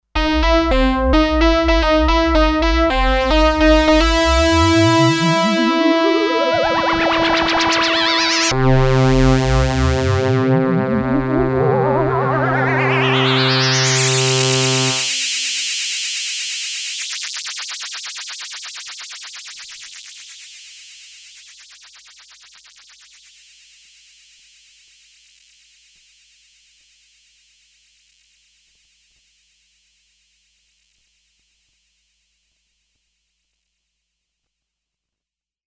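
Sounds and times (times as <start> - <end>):
Sequential Circuits Six-Trak synthesizer stacked voices: 0.0 - 15.2.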